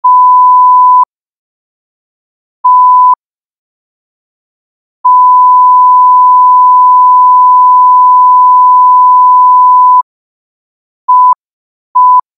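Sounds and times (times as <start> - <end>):
censor beep: 0.0 - 1.1, 2.6 - 3.2, 5.1 - 10.0, 11.1 - 11.4, 12.0 - 12.3.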